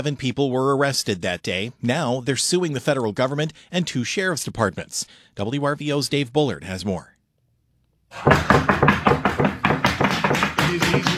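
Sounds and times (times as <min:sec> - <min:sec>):
speech: 0:00.0 - 0:07.2, 0:08.1 - 0:08.8, 0:10.7 - 0:11.1
heavy fists pounding on a door: 0:08.2 - 0:11.1.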